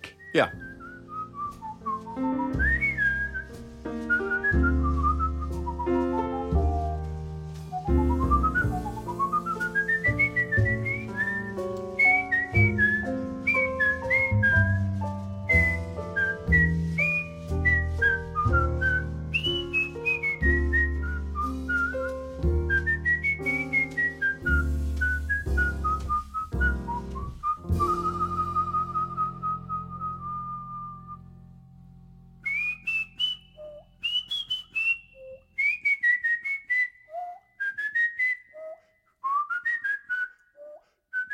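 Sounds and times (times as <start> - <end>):
person whistling a lively melody on a record: 0.0 - 31.3, 32.4 - 41.3
speech: 0.4 - 0.6, 2.2 - 2.5
musical accompaniment with bass and rhythm: 0.6 - 33.3.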